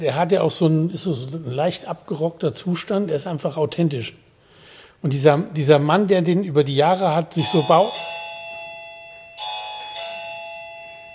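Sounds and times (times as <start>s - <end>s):
speech: 0.0s - 4.2s, 5.0s - 8.1s
electronic doorbell two-tone ding-dong: 7.4s - 11.1s.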